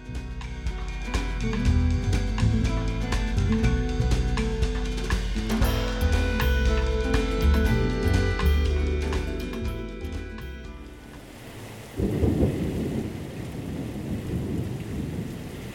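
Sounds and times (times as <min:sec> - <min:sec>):
music: 0:00.0 - 0:11.3
monsoon rain in the Sonoran Desert: 0:00.6 - 0:15.7
deep roll of thunder: 0:04.3 - 0:15.7.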